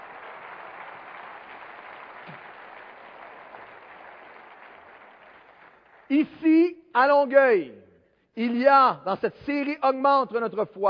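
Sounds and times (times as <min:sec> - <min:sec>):
crowd applauding with many hands clapping: 0:00.0 - 0:06.2
speech: 0:06.1 - 0:07.8, 0:08.4 - 0:10.8.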